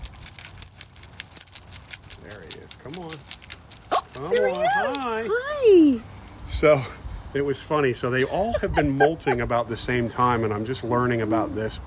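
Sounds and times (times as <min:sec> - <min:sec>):
set of keys jingling: 0:00.0 - 0:06.8
speech: 0:02.2 - 0:03.4, 0:04.2 - 0:11.8
laughter: 0:08.2 - 0:10.4.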